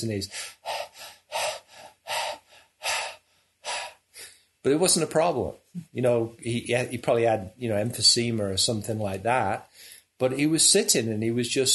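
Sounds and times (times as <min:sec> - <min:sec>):
speech: 0:00.0 - 0:00.6, 0:04.6 - 0:11.7
person imitating heavy dog-like panting of an elderly man sitting in half lotus: 0:00.3 - 0:04.0.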